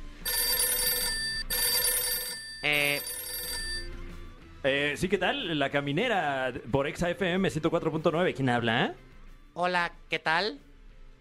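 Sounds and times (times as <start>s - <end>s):
telephone ringing with an incoming call: 0.1s - 4.2s
speech: 2.6s - 3.1s, 4.6s - 11.1s.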